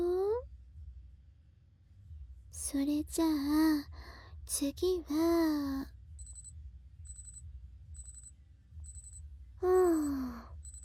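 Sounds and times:
speech: 2.5 - 6.0
electronic alarm beeping: 6.2 - 6.5, 7.1 - 7.4, 8.0 - 9.2, 10.0 - 10.8.

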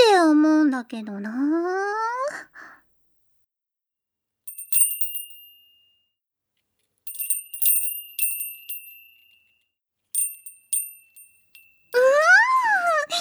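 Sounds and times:
speech: 0.8 - 2.0
Japanese summer wind bell tinkling: 4.5 - 6.0, 7.1 - 9.6, 10.2 - 12.7
person making moaning vocal glides: 12.0 - 13.2.

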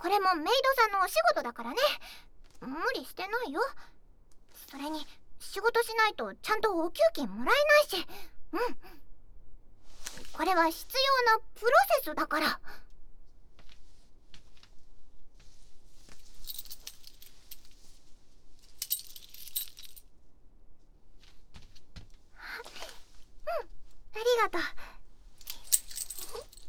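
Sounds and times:
speech: 0.0 - 4.0, 4.7 - 9.0, 10.1 - 12.8, 23.5 - 24.9
keys jangling as a spare key is handed over: 16.2 - 17.7, 18.7 - 20.0, 25.4 - 26.6.

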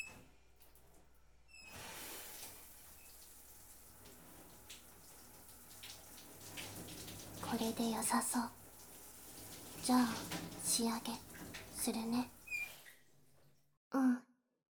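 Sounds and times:
shower water rinsing off soap foam: 1.6 - 13.1
speech: 7.6 - 8.6, 9.9 - 12.4, 13.9 - 14.2.

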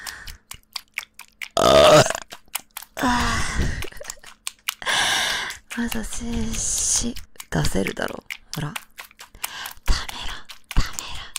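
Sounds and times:
faint wet mouth clicks: 0.0 - 11.3
person burping: 1.6 - 2.3
speech: 5.8 - 8.9.

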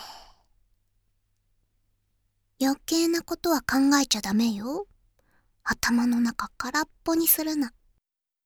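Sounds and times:
soft sigh-like breath out during a slow relaxation breathing exercise: 0.0 - 0.5
speech: 2.6 - 4.9, 5.7 - 7.8.

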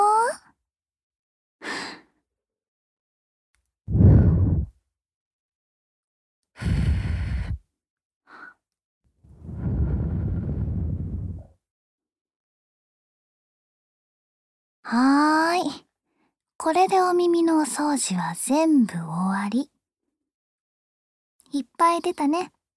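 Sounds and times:
soft breaths blown gently into the ear to finish an ear cleaning: 3.9 - 4.7, 6.6 - 7.6, 9.3 - 11.5
speech: 14.9 - 15.8, 16.6 - 19.7, 21.5 - 22.6.

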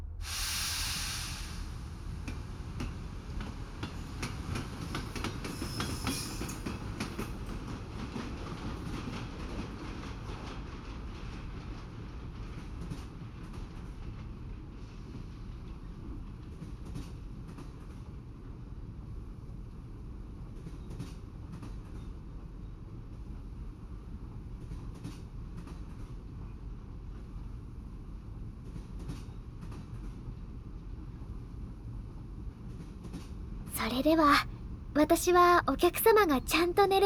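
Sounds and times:
luxury continental express sleeper train pulling away and running on rails: 0.0 - 37.0
bright hiss: 0.2 - 1.8
speech: 33.8 - 37.0.

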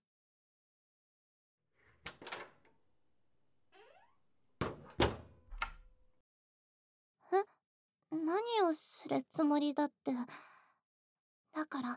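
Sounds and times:
lockable toilet door in an old school building shutting with solid thuds: 2.1 - 2.6, 4.6 - 6.0
speech: 9.1 - 10.5, 11.6 - 11.9.

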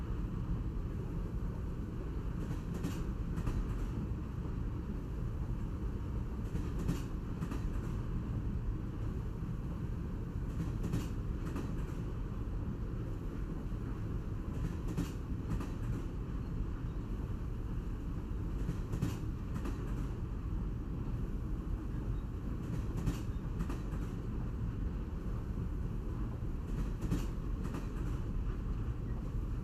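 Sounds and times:
cruise train running heard from inside a carriage: 0.0 - 29.6.

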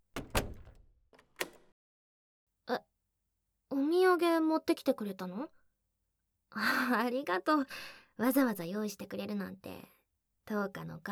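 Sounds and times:
home door clunking and rattling as it is opened: 0.0 - 1.7
speech: 2.7 - 2.9, 4.1 - 5.6, 6.5 - 11.0.

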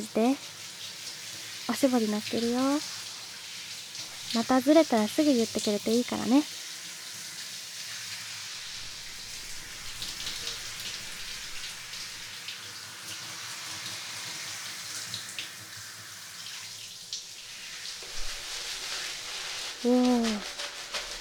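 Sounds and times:
speech: 0.0 - 0.6, 1.7 - 3.0, 4.3 - 6.6
hot water rinsing a boy's hair during a hair wash: 0.0 - 21.1.

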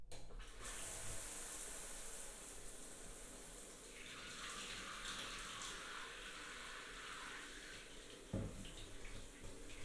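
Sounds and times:
water rinsing from a tap: 0.3 - 9.8.

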